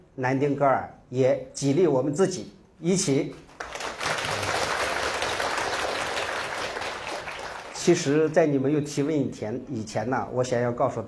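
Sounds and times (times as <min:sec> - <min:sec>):
speech: 0:00.2 - 0:03.5, 0:07.9 - 0:11.0
audience applause: 0:03.6 - 0:08.2.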